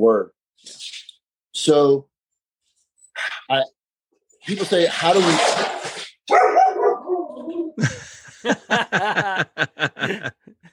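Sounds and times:
speech: 0.0 - 0.9, 1.6 - 2.1, 3.2 - 3.8, 4.4 - 6.4, 7.8 - 10.5
dogs barking: 6.3 - 7.3
laughter: 7.8 - 10.7.

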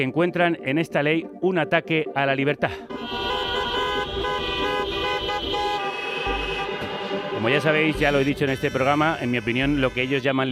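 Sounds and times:
speech: 0.0 - 3.2, 7.4 - 10.4
low rumble of car engines: 2.8 - 10.4
several car horns honking at a car protest against an education law: 2.9 - 10.4.

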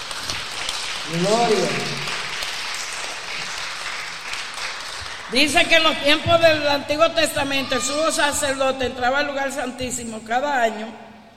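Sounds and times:
crowd applauding during a sermon: 0.0 - 6.2
speech: 1.1 - 2.0, 5.3 - 11.1.

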